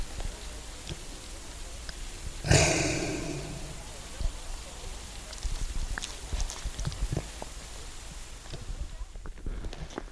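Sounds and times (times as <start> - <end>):
soft outdoor ambience: 0.0 - 10.1
reindeer snorting breath: 2.4 - 3.9.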